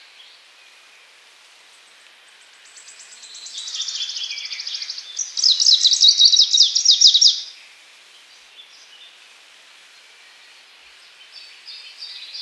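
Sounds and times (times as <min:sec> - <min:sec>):
greenish warbler singing: 0:02.8 - 0:07.5.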